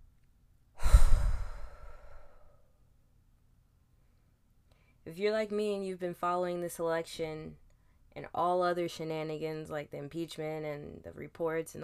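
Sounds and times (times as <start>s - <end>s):
deep breath let out as loud exhale: 0.8s - 2.6s
speech: 5.1s - 7.6s, 8.2s - 11.8s.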